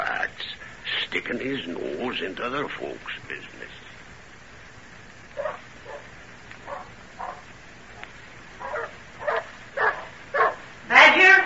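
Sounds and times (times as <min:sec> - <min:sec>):
speech: 0:00.4 - 0:03.9
dogs barking in short sharp bursts: 0:05.4 - 0:11.4.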